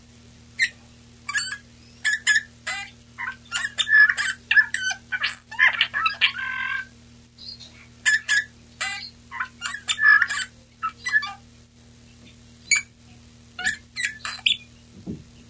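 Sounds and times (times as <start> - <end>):
low electrical hum: 0.0 - 15.4
male Eurasian bullfinch Pyrrhula pyrrhula singing: 0.6 - 11.4, 13.6 - 14.8.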